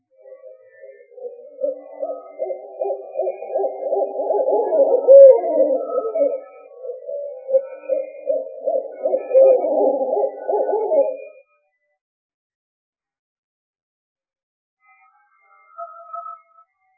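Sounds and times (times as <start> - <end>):
owl hooting: 0.2 - 11.4.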